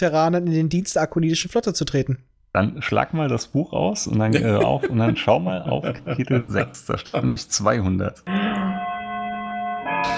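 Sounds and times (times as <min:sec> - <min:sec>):
speech: 0:00.0 - 0:08.4
laughter: 0:04.0 - 0:08.7
clock striking the hour: 0:08.3 - 0:10.1.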